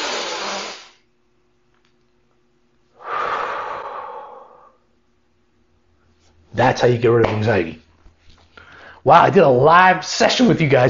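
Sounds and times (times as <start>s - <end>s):
slow deep breath during a calming exercise against anxiety: 2.9s - 4.9s, 8.5s - 9.0s
speech: 6.5s - 7.8s, 9.0s - 10.8s.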